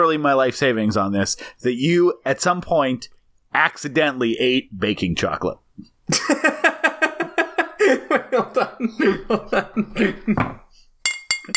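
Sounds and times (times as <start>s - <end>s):
speech: 0.0s - 6.4s, 8.2s - 10.6s
laughter: 6.1s - 10.6s
glass tapped to ring like a bell: 11.1s - 11.5s.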